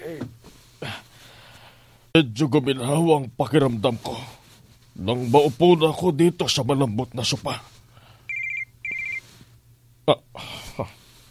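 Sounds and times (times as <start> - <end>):
speech: 2.2 - 4.4, 5.0 - 7.7, 10.1 - 11.0
mobile phone ringtone with high-pitched trilling notes: 8.3 - 9.3.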